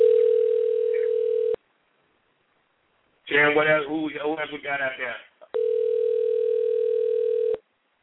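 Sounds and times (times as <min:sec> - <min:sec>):
electronic telephone ringback tone on an outgoing call: 0:00.0 - 0:01.6, 0:05.6 - 0:07.6
speech: 0:03.4 - 0:05.3.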